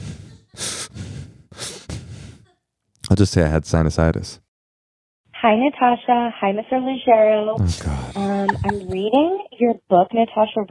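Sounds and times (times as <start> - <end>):
laughter: 0.0 - 0.8, 7.6 - 9.1
heavy breathing through the nose: 0.0 - 2.5
speech: 3.1 - 4.4, 5.4 - 10.7.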